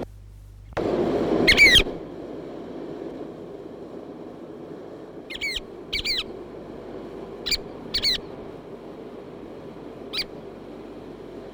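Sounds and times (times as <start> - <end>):
steady roar of background noise: 0.0 - 11.5
Chatham Island oystercatcher sharp downslurred piping notes: 1.4 - 2.1, 5.2 - 6.6, 7.2 - 8.7, 10.0 - 10.5.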